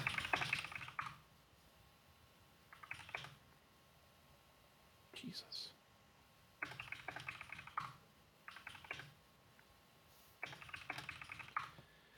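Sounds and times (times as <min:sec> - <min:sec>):
typing on a computer keyboard: 0:00.0 - 0:01.2, 0:02.7 - 0:03.4, 0:06.6 - 0:09.2, 0:10.4 - 0:11.8
speech: 0:05.2 - 0:05.8.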